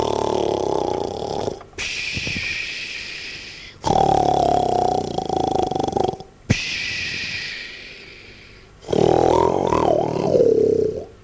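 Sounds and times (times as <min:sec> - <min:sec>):
person imitating the loud snoring of a dragon: 0:00.0 - 0:01.6, 0:03.8 - 0:08.1, 0:08.8 - 0:11.1.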